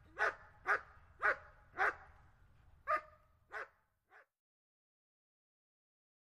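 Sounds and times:
German Shepherd dog barking: 0.0s - 2.1s, 2.8s - 4.4s.

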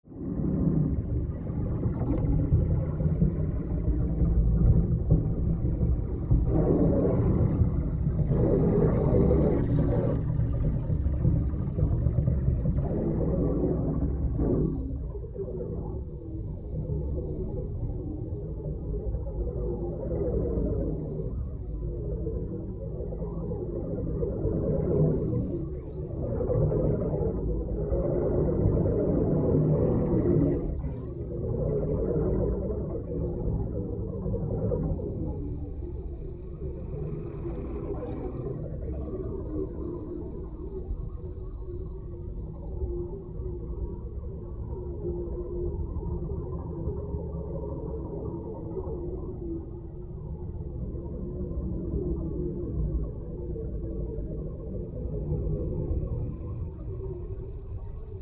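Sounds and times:
air bubbles underwater: 0.0s - 58.2s.

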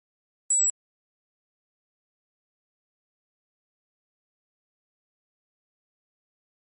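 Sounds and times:
elongated flash beep: 0.5s - 0.7s.

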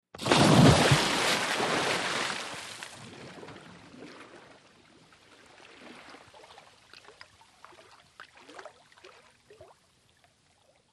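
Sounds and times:
huge splash: 0.2s - 4.5s.

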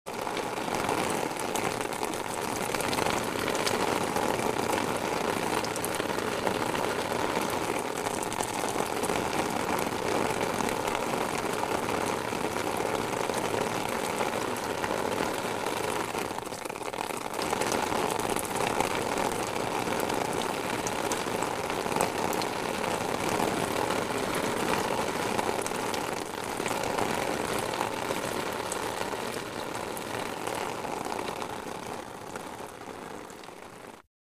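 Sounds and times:
steady rain: 0.1s - 34.1s.

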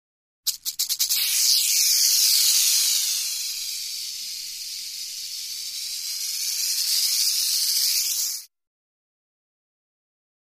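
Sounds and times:
rattlesnake rattle buzzing: 0.5s - 8.5s.

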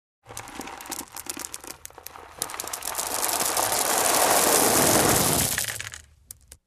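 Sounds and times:
sand, rock and gravel pouring outdoors: 0.2s - 6.1s.

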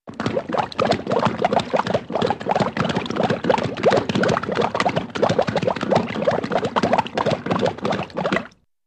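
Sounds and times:
horse drinking: 0.1s - 8.5s.

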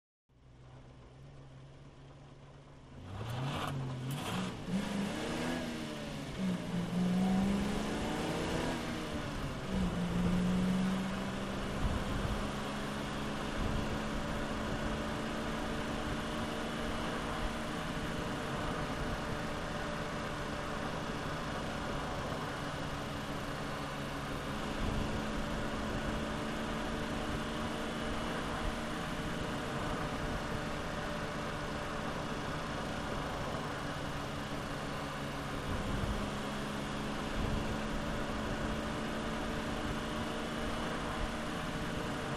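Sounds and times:
V8 car engine heard from car interior: 0.3s - 42.3s.

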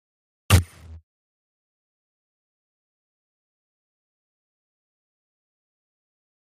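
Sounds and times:
static pulse: 0.5s - 1.0s.

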